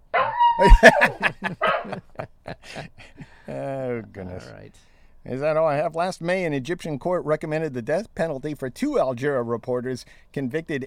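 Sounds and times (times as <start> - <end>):
dog growling and yipping in short choppy bursts: 0.1 - 1.9
speech: 0.6 - 2.9, 5.5 - 10.8
laughter: 0.6 - 3.7.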